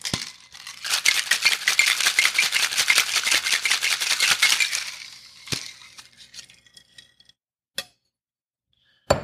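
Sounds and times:
ice rattling in a cocktail shaker with habanero shrub cocktail: 0.0s - 6.8s.

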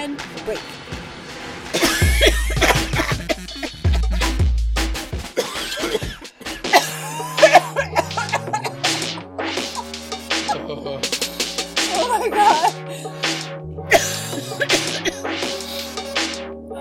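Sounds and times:
speech: 0.2s - 1.0s
sharp percussive thumps: 1.7s - 16.4s
laughter-like sounds: 1.8s - 4.4s, 5.4s - 12.8s
person coughing: 1.8s - 4.4s, 5.4s - 11.0s, 12.0s - 12.8s, 13.9s - 15.2s.

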